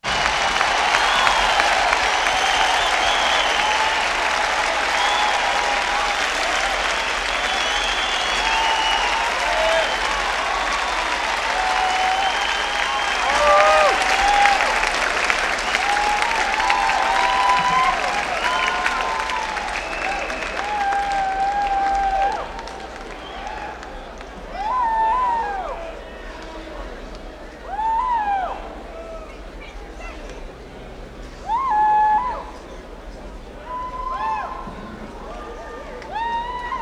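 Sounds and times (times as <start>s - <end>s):
crowd applause: 0.0s - 36.7s.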